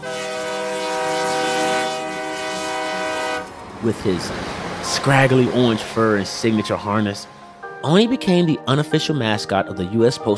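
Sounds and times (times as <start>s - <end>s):
train horn blaring: 0.0s - 7.8s
speech: 3.8s - 10.3s.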